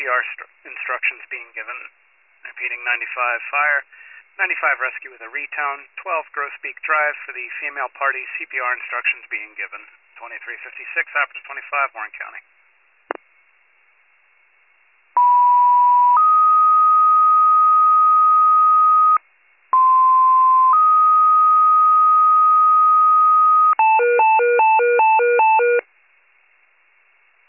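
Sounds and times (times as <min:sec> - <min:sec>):
speech: 0:00.0 - 0:12.5
fire department dispatch two-tone paging tones: 0:15.2 - 0:19.2, 0:19.8 - 0:25.8.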